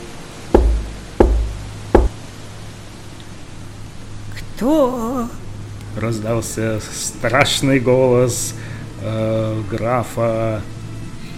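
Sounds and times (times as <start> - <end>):
heavy knocks on a wooden castle door: 0.6 - 2.2
speech: 4.6 - 5.4, 6.0 - 10.7.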